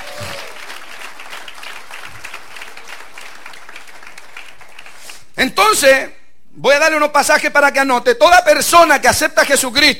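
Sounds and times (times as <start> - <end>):
audience clapping hands in sustained applause: 0.0 - 5.2
speech: 5.4 - 9.9.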